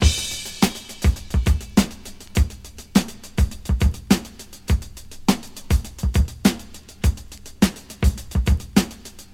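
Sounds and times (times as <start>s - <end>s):
103 bpm drum loop in D sharp: 0.0s - 9.3s.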